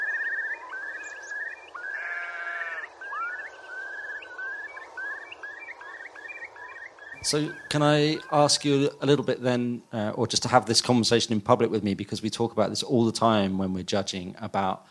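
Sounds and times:
curlew bubbling song with upward-sliding whistles: 0:00.0 - 0:10.0
speech: 0:07.2 - 0:14.8.

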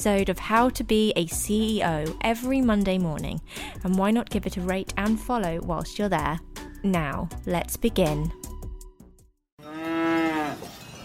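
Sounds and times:
speech: 0:00.0 - 0:08.4
cow mooing on a mountain: 0:09.6 - 0:10.8.

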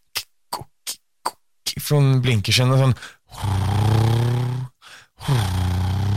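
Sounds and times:
speech: 0:01.9 - 0:03.6
man's voice imitating a motorcycle engine revving: 0:03.4 - 0:06.1.

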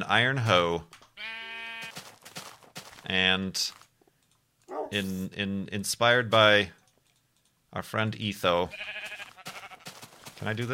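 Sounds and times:
speech: 0:00.0 - 0:01.4, 0:03.0 - 0:03.8, 0:04.8 - 0:06.8, 0:07.7 - 0:09.1, 0:10.4 - 0:10.7
sheep bleating: 0:01.2 - 0:02.0, 0:08.6 - 0:10.0
scuffing and rustling noises: 0:01.8 - 0:03.9, 0:09.0 - 0:10.7.

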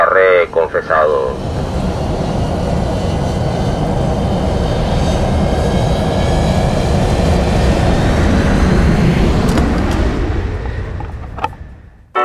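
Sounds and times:
airplane engine roar while taking off: 0:00.0 - 0:12.1
speech: 0:00.5 - 0:01.8.

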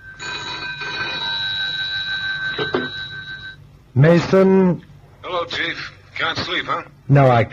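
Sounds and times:
telephone ringing by bedside: 0:00.0 - 0:03.7
speech: 0:04.0 - 0:04.9, 0:05.5 - 0:07.5.

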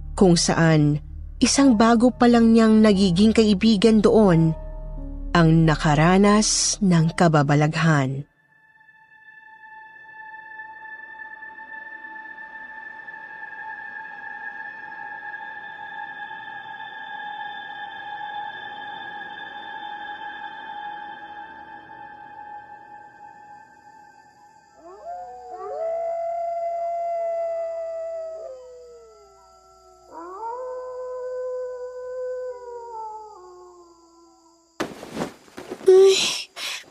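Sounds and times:
speech: 0:00.2 - 0:04.6, 0:05.3 - 0:08.3
stray dog howling in the street: 0:24.8 - 0:34.6
rustling noise: 0:34.8 - 0:36.9.

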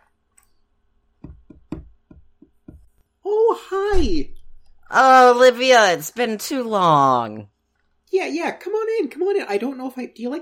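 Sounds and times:
dull knocks on a door: 0:01.2 - 0:02.9
speech: 0:03.5 - 0:07.5, 0:08.1 - 0:10.3.

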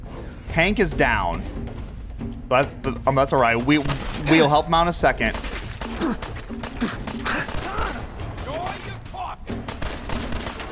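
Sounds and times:
speech: 0:00.6 - 0:01.7, 0:02.5 - 0:07.0
rapid gunfire in a shooter video game: 0:05.4 - 0:08.8, 0:09.6 - 0:10.7.

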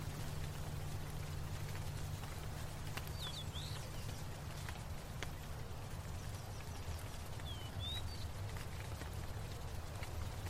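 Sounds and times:
low engine-like hum: 0:00.0 - 0:10.4
spray and water droplets pattering on leaves: 0:00.0 - 0:10.4
birds chirping: 0:01.6 - 0:08.8.

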